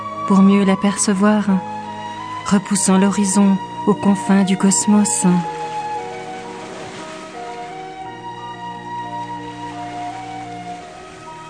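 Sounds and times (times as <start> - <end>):
ocean waves in soft steady surf: 0.0 - 11.4
speech: 0.3 - 1.8, 2.5 - 5.7.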